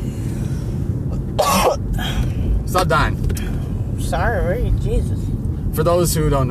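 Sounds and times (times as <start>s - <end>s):
low steady rumble: 0.0s - 6.5s
person coughing and choking on a peanut: 1.3s - 2.0s
speech: 2.0s - 6.5s.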